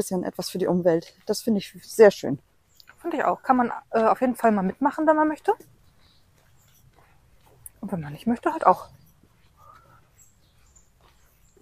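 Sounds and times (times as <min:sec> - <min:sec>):
speech: 0:00.0 - 0:05.8, 0:07.8 - 0:09.0
faint birds chirping and tweeting outdoors: 0:00.0 - 0:11.6.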